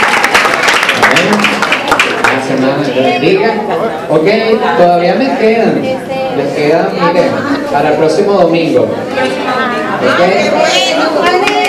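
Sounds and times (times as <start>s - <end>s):
audience applause at a Christian ethics class: 0.0s - 2.6s
speech: 2.6s - 11.5s.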